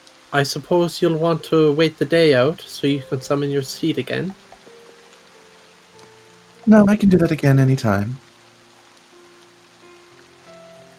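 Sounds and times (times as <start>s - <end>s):
rain falling during a storm: 0.0s - 10.9s
speech: 0.3s - 4.4s, 6.7s - 8.3s
soft low tones: 6.7s - 7.8s.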